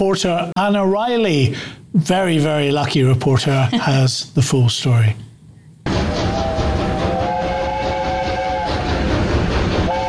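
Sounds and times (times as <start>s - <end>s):
speech: 0.0s - 5.3s
steam locomotive rumbling and hissing at a steam gala: 5.8s - 10.0s
steam locomotive horn sounding a long steady tone: 5.9s - 9.2s, 9.8s - 10.0s.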